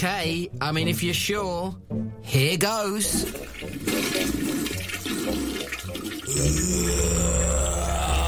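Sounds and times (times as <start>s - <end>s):
speech: 0.0s - 4.5s, 6.4s - 7.6s
downstairs toilet flushing and draining: 3.0s - 8.2s.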